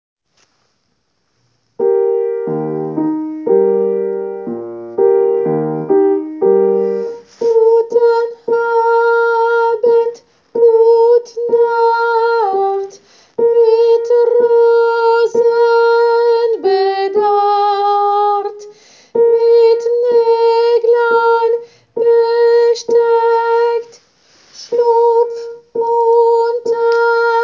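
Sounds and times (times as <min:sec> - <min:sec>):
tenor singing a lullaby: 0:01.8 - 0:27.4.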